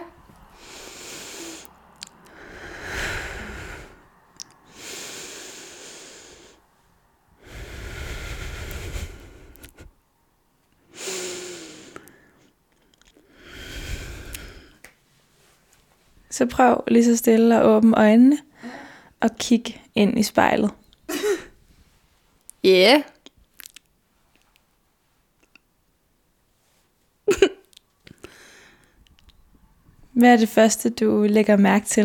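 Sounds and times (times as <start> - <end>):
slow deep breaths close to the microphone: 0.0 - 10.0, 10.8 - 15.6, 18.4 - 19.2, 28.1 - 30.1
speech: 16.4 - 18.5, 19.2 - 20.8, 22.6 - 23.1, 30.2 - 32.0.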